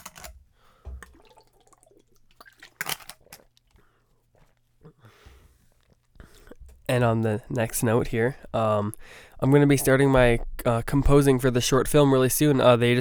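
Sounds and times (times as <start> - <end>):
person sipping water: 0.7 - 6.6
gulp of water: 0.8 - 5.4
speech: 6.9 - 13.0.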